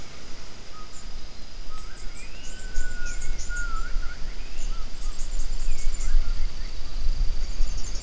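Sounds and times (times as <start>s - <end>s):
steady high hiss: 0.0s - 8.0s
gibbon calls: 1.7s - 5.2s.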